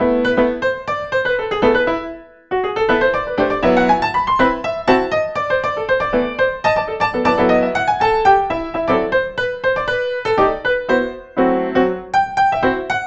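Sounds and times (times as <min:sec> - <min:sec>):
virtual instrument piano: 0:00.0 - 0:13.0.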